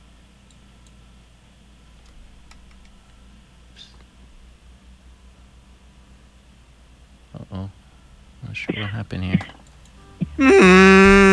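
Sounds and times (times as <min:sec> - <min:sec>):
speech: 0:08.6 - 0:09.6, 0:10.4 - 0:10.9
albatross calling on Kauai: 0:10.3 - 0:11.3.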